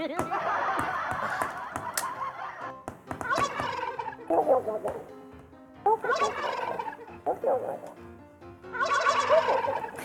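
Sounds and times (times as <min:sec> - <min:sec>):
laughter: 0:00.2 - 0:04.6
turkey gobbling: 0:01.9 - 0:05.0, 0:05.8 - 0:08.0, 0:08.7 - 0:10.0.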